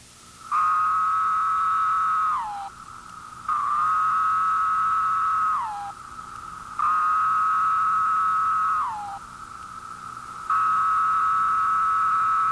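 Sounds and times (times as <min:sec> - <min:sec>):
periodical cicadas singing courtship song in buzzing phrases: 0:00.2 - 0:12.5.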